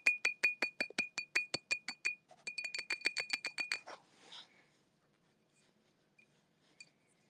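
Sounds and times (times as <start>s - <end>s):
glass baby bottle with a nipple being tapped: 0.0s - 3.9s.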